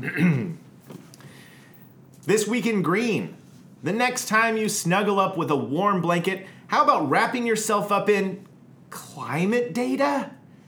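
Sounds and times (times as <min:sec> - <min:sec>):
speech: 0:00.0 - 0:00.6, 0:02.3 - 0:10.4
throat clearing: 0:00.0 - 0:00.6.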